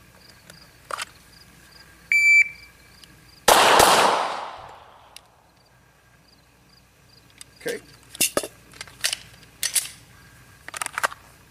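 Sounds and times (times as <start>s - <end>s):
electronic shot-timer beep: 2.1s - 2.7s
gunshots fired at a paper target during a recoil management drill: 3.5s - 5.2s.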